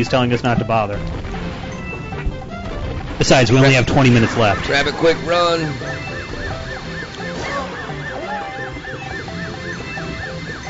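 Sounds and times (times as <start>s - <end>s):
speech: 0.0s - 1.4s, 3.2s - 6.0s
video game sounds: 1.0s - 10.6s
video game siren wailing: 4.5s - 10.6s.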